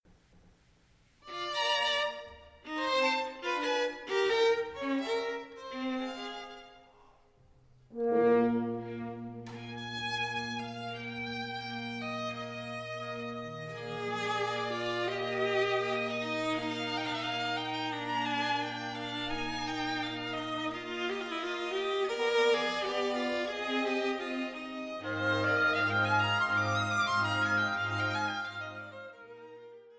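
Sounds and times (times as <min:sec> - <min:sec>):
violin: 0:01.2 - 0:07.2, 0:07.9 - 0:29.9.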